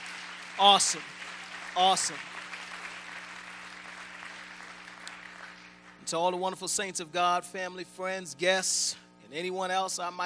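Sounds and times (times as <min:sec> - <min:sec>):
crowd of many hands clapping at once: 0:00.0 - 0:06.1
speech: 0:00.6 - 0:01.2, 0:01.8 - 0:02.3, 0:06.1 - 0:10.2.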